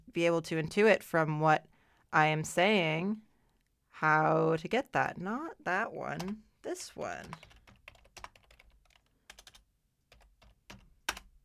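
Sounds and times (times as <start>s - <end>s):
speech: 0.2s - 3.3s, 4.0s - 7.5s
typing on a computer keyboard: 7.2s - 11.4s.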